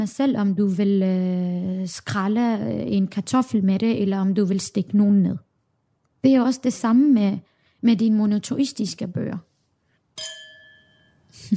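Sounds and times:
speech: 0.0 - 5.5, 6.2 - 9.5
two wine glasses clinking in a toast: 10.2 - 11.4.

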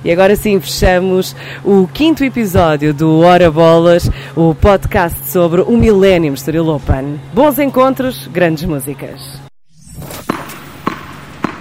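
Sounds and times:
speech: 0.0 - 9.4
tennis ball bouncing: 10.2 - 11.6.

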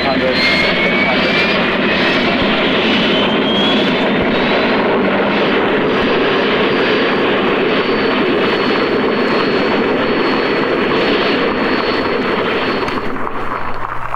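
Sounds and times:
experimental turbine race car engine starting and revving: 0.0 - 14.1
thin whistling tone: 3.0 - 4.7.

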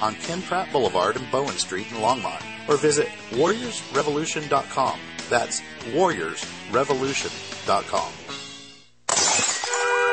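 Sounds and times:
speech: 0.0 - 8.4
glass shards tinkling and scattering: 9.1 - 10.0
window pane shattering: 9.1 - 10.1.

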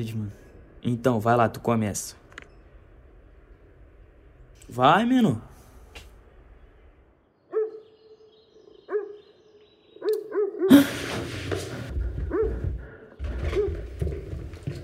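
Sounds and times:
speech: 0.0 - 2.2, 4.7 - 5.5
dog barking in short yipping bursts: 7.5 - 8.0, 8.9 - 9.3, 10.0 - 10.9, 12.3 - 12.7, 13.4 - 13.8.

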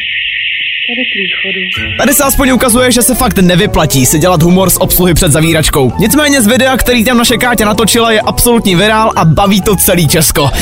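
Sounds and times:
high-pitched alarm ringing inside a closed shopping mall: 0.0 - 4.0
speech: 0.9 - 10.6
laughter: 10.4 - 10.6.

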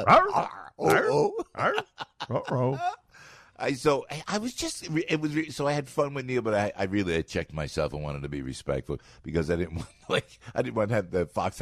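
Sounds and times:
dog growling and groaning: 0.0 - 1.8
speech: 0.0 - 3.0, 3.6 - 11.6.

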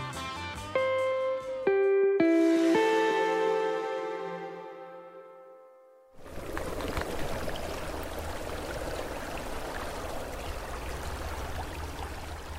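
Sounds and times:
brief chiming musical sting: 1.7 - 5.9
trickling stream: 6.2 - 12.5.

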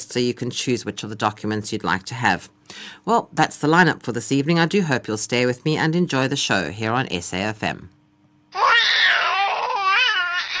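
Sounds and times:
speech: 0.1 - 8.0
colicky baby crying loudly: 8.5 - 10.5.

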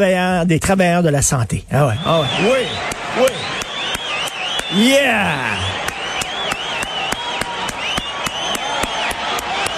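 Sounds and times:
speech: 0.0 - 3.4, 4.7 - 5.9
wavering whistles from a crowd: 1.9 - 9.7
crowd clapping in unison in a standing ovation: 2.2 - 9.7.

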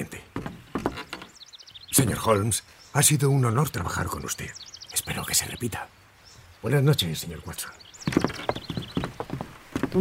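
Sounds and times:
speech: 2.0 - 6.0, 6.6 - 7.8
horse hooves clip-clopping on a hard road: 8.0 - 9.9.

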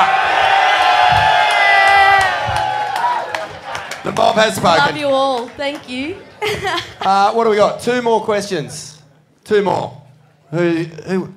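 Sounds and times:
people shouting and whooping: 0.0 - 3.9
live crowd cheering: 0.0 - 6.4
speech: 4.4 - 11.3.

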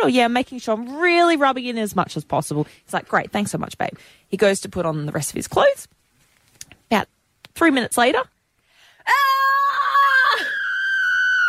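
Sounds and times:
speech: 0.0 - 6.0, 6.9 - 8.3
voice imitating a man's shrill scream of pain from burning skin: 9.1 - 11.4.

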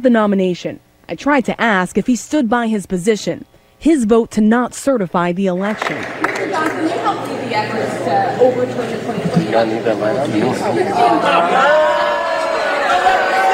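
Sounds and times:
speech: 0.0 - 11.9
lawmakers shouting and booing: 10.8 - 13.5.

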